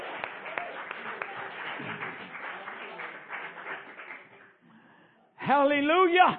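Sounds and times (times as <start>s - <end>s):
audience applauding: 0.0s - 4.6s
speech: 5.5s - 6.3s.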